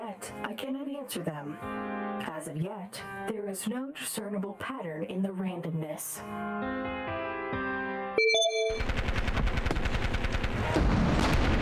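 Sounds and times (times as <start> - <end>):
speech: 0.2 - 7.6
brief ringing tones: 8.2 - 8.9
rapid machine-gun-style gunfire of World War I trench warfare: 8.8 - 11.6.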